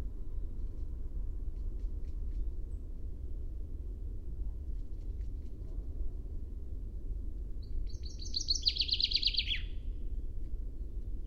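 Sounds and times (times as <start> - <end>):
constant low rumble: 0.0 - 11.2
common chaffinch Fringilla coelebs singing: 7.6 - 9.8.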